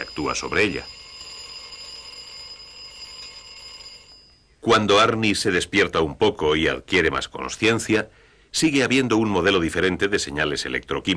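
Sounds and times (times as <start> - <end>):
alarm clock ringing with a bright metallic jangle: 0.0 - 4.8
speech: 0.2 - 1.0, 4.7 - 11.1.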